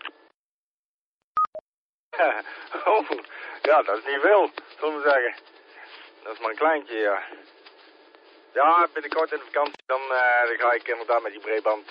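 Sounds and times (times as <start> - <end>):
radio DTMF electronic tone beeps: 1.4 - 1.6
speech: 2.2 - 5.6, 6.2 - 7.6, 8.5 - 11.8.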